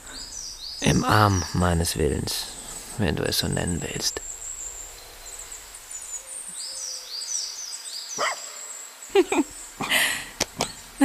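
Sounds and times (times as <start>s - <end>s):
steady high birdsong: 0.0s - 11.0s
speech: 0.8s - 4.3s
dog barking on a woodland path by a country estate: 8.2s - 8.6s.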